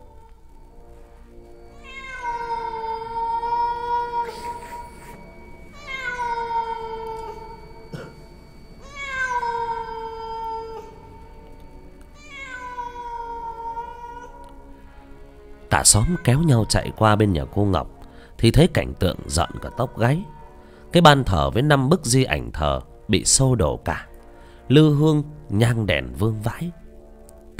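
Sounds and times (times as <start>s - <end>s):
cat meowing mournfully: 0.0s - 0.5s, 1.6s - 14.6s, 15.8s - 17.2s, 19.1s - 20.8s
speech: 15.8s - 24.1s, 24.7s - 26.8s.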